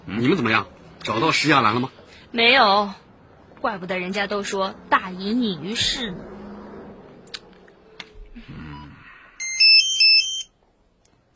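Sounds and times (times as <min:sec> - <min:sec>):
speech: 0:00.1 - 0:03.0, 0:03.6 - 0:06.3
mobile phone ringing with a bright electronic melody: 0:09.4 - 0:10.5.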